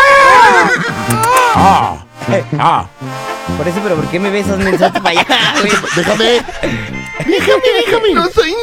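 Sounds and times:
horse neighing with a shrill, wavering whinny: 0.0 - 2.0
laughter: 0.3 - 1.9, 4.4 - 8.4
speech: 2.3 - 8.6.

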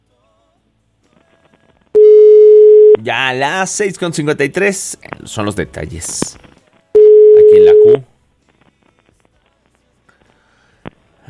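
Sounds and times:
telephone busy signal while dialing a call: 2.0 - 3.0, 7.0 - 8.0
speech: 3.0 - 6.5, 7.8 - 8.1.

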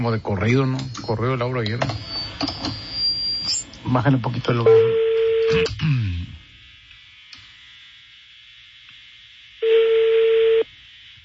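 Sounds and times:
speech: 0.0 - 2.8, 3.8 - 6.2
faint hum: 0.0 - 11.2
ringback tone of an outgoing phone call through a phone line: 4.7 - 5.7, 9.6 - 10.6.

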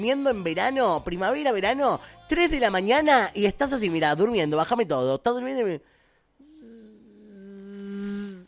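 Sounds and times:
speech: 0.0 - 5.9
mosquito buzzing past the ear at night: 6.4 - 8.4.

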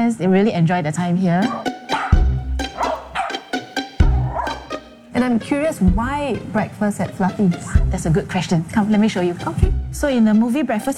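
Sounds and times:
speech: 0.1 - 1.7, 5.2 - 10.9
several dogs barking at a pet hotel: 1.4 - 4.9.

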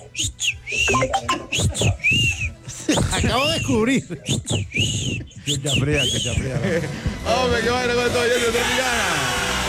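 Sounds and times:
person whistling with the lips imitating a small bird: 0.1 - 2.6, 4.3 - 6.4
speech: 3.2 - 9.5.

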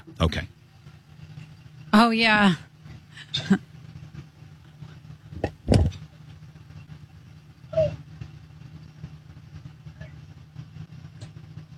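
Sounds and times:
pickup truck engine rumbling while backing into driveway: 0.0 - 11.7
speech: 0.1 - 0.6, 2.0 - 2.7, 3.3 - 3.7
sharp clunks and knocks: 4.2 - 6.2.

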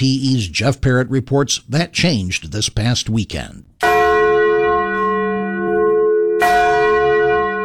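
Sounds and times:
speech: 0.0 - 3.8
new bronze church bell ringing in a bell tower: 3.8 - 7.6.

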